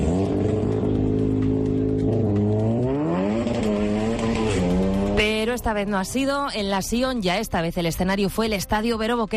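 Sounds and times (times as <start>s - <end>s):
car tires squealing while drifting and spinning donuts on asphalt: 0.0s - 5.4s
car engines revving at an illegal car meet: 0.0s - 7.7s
speech: 5.6s - 9.3s.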